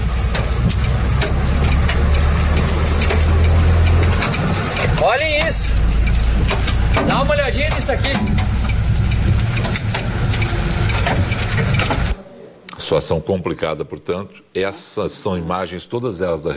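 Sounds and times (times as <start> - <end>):
large hailstones pounding during a storm: 0.0 - 12.2
steady roar of storm noise: 0.0 - 12.7
speech: 7.5 - 8.6, 12.9 - 16.5.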